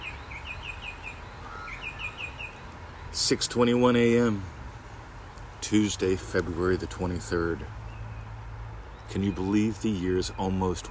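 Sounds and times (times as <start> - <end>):
bird singing repeated chirping notes: 0.0 - 3.4, 5.8 - 10.8
speech: 3.2 - 4.5, 5.7 - 7.8, 9.1 - 10.8.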